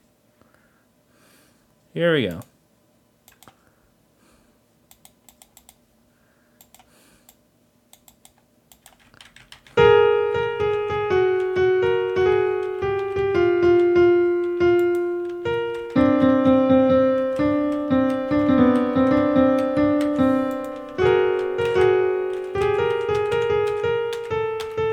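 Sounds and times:
speech: 0:02.0 - 0:02.5
simple melody on online virtual synthesized piano: 0:09.6 - 0:24.9.

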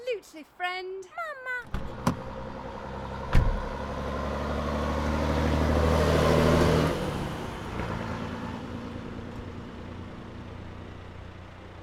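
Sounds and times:
speech: 0:00.2 - 0:02.0
sharp clunks: 0:01.6 - 0:02.3, 0:03.3 - 0:03.7
truck engine rumbling and revving as the vehicle pulls away: 0:01.6 - 0:11.8.

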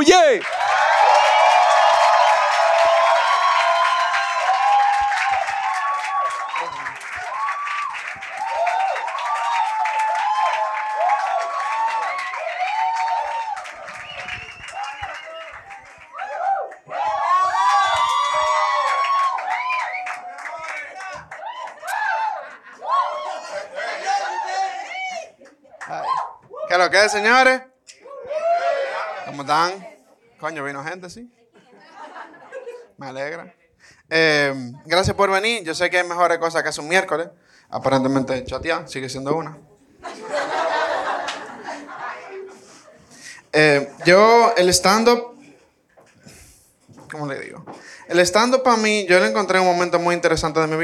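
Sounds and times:
speech: 0:00.0 - 0:00.6, 0:26.9 - 0:27.7, 0:29.4 - 0:31.4, 0:33.0 - 0:40.2, 0:43.6 - 0:45.3, 0:47.1 - 0:50.8
comedy show audience clapping: 0:00.0 - 0:24.3
crowd at a stand-up comedy show cheering and whooping: 0:00.4 - 0:27.2, 0:28.0 - 0:29.4
laughter: 0:22.2 - 0:24.3, 0:31.5 - 0:33.0, 0:40.0 - 0:43.2.

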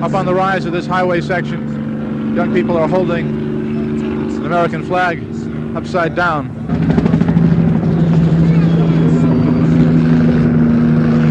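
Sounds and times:
speech: 0:00.0 - 0:03.4, 0:04.4 - 0:07.0
military police helicopter flying overhead: 0:00.0 - 0:11.3.

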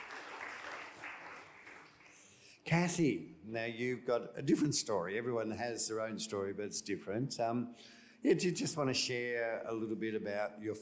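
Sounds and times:
crowd applauding: 0:00.0 - 0:02.3
speech: 0:02.6 - 0:10.8.

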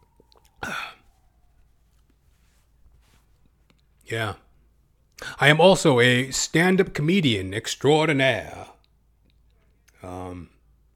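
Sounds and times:
person slurping a sip of water: 0:00.1 - 0:01.0
speech: 0:04.1 - 0:04.4, 0:05.2 - 0:08.8.

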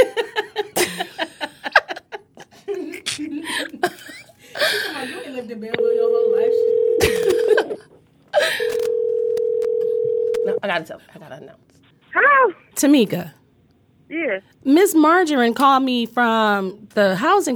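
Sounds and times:
people laughing: 0:00.0 - 0:05.2, 0:07.0 - 0:08.7
phone call ringing over a speakerphone: 0:05.8 - 0:07.6, 0:08.6 - 0:10.6
speech: 0:10.8 - 0:11.7, 0:12.8 - 0:13.4, 0:14.1 - 0:17.5.

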